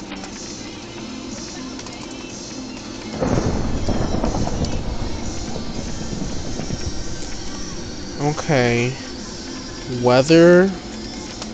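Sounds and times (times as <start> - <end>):
heavy continuous roaring rumble: 3.2 - 10.4
speech: 8.2 - 9.0, 9.9 - 10.8.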